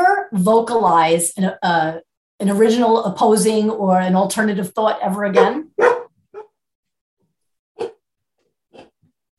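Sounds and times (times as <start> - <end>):
speech: 0.3 - 5.9
dog barking: 5.4 - 6.5, 7.8 - 8.0.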